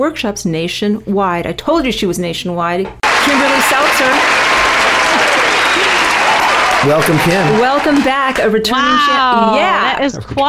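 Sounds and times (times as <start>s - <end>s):
speech: 0.0s - 4.4s, 6.8s - 10.4s
applause from a small group: 3.0s - 8.5s.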